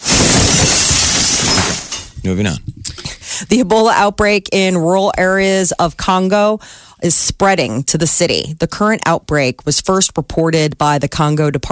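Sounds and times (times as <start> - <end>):
glass shattering: 0.0 - 2.2
speech: 2.3 - 2.9, 3.5 - 11.6.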